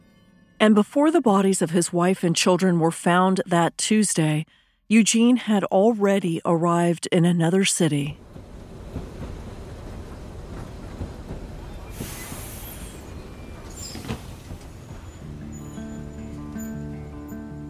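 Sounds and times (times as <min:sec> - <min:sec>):
speech: 0:00.6 - 0:08.2
train rumbling: 0:07.9 - 0:16.7
hissing air bursts: 0:11.9 - 0:13.2.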